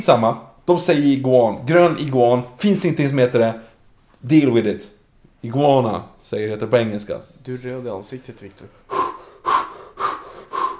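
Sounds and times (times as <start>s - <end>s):
speech: 0.0s - 9.0s
heavy agitated breathing near hyperventilating: 8.8s - 10.7s.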